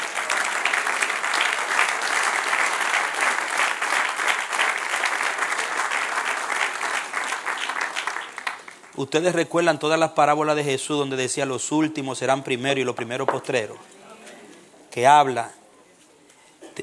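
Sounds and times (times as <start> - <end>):
congregation applauding: 0.0 - 9.0
speech: 9.0 - 13.9, 15.0 - 15.6.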